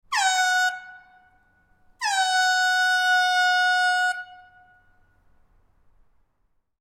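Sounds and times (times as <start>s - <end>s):
football horn: 0.1s - 1.4s, 2.0s - 5.1s.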